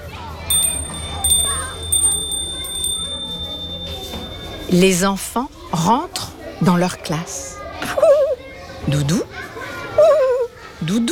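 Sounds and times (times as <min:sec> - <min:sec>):
small school bell ringing for end of recess: 0:00.5 - 0:05.4
speech: 0:04.7 - 0:08.2, 0:08.9 - 0:10.1, 0:10.8 - 0:11.0.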